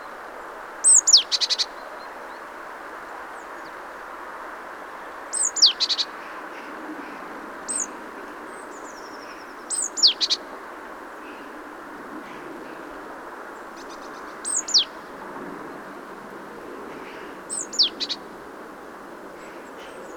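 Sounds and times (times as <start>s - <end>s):
steady background noise: 0.0s - 20.1s
Great tit Parus major call bouts: 0.8s - 1.9s, 5.3s - 6.3s, 7.6s - 10.4s, 13.8s - 15.1s, 17.0s - 18.2s.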